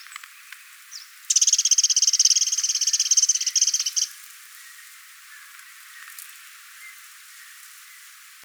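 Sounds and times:
Eurasian wren Troglodytes troglodytes trilling: 0.0s - 8.4s.

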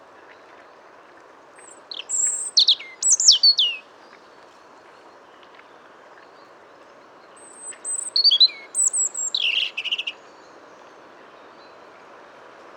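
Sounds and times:
Erithacus rubecula singing: 1.9s - 3.8s, 7.6s - 10.2s.

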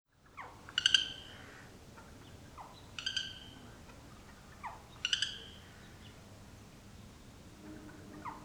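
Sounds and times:
Eurasian jay Garrulus glandarius calls with falling slur and harsh ringing note: 0.4s - 6.2s, 7.6s - 8.4s.

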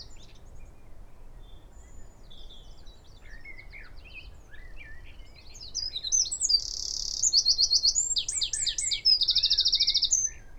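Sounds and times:
Eurasian wren Troglodytes troglodytes singing: 5.8s - 10.4s.

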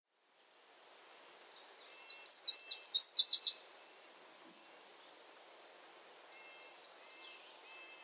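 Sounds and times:
Nashville warbler Leiothlypis ruficapilla singing: 1.5s - 3.8s, 4.7s - 8.0s.

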